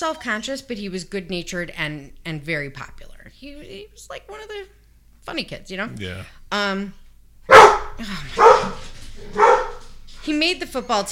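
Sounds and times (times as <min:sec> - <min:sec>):
speech: 0:00.0 - 0:07.0, 0:07.7 - 0:09.6, 0:10.3 - 0:11.0
dog barking excitedly: 0:07.5 - 0:10.0.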